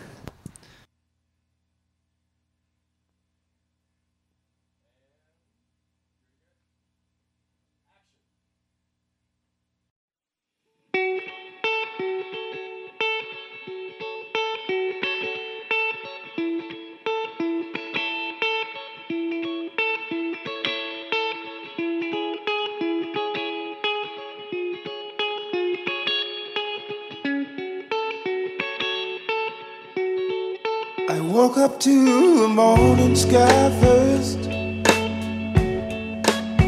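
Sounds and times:
lively instrumental music with bright effects-laden guitar: 0:10.9 - 0:36.6
speech: 0:31.5 - 0:34.5.

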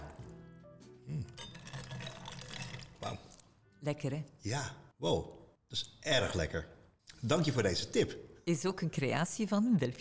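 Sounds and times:
mint mocktail slurped through a sustainable straw: 0:01.2 - 0:03.5
speech: 0:03.8 - 0:09.9.

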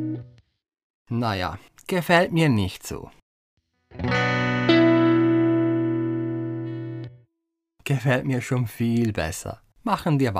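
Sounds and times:
speech: 0:01.1 - 0:03.2, 0:07.9 - 0:10.3
electric guitar strumming a B minor chord through a distorted chorus-like effect: 0:03.9 - 0:07.2.

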